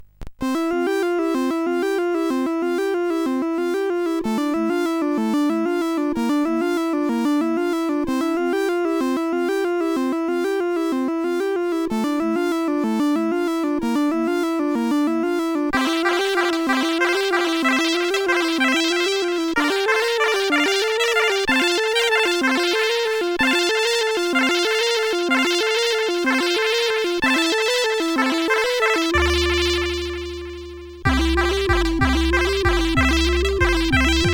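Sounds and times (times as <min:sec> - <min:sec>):
chiptune piece on CSG8580R5 chip: 0:00.4 - 0:34.3.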